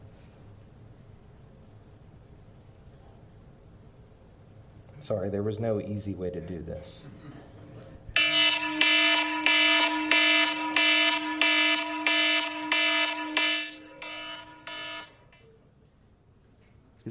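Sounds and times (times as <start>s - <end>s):
speech: 5.0s - 7.4s
alarm clock ringing with harsh buzzing electronic beeps: 8.2s - 15.4s.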